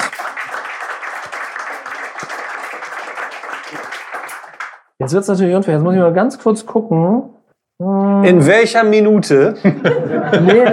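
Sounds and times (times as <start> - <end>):
crowd applauding a volunteer: 0.0 - 4.9
speech: 5.0 - 10.7
laughter: 9.6 - 10.7.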